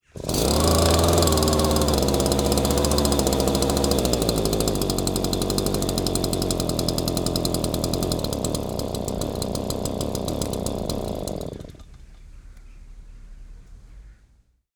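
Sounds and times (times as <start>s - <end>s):
leaf blower engine cold start: 0.0s - 12.6s.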